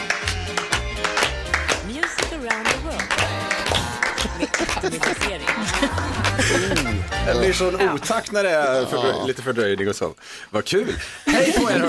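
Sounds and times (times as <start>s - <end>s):
hand claps from radio hosts in a studio: 0.0s - 7.0s
upbeat music: 0.0s - 9.5s
laughter: 3.7s - 10.2s, 10.9s - 11.8s
speech: 4.8s - 11.8s.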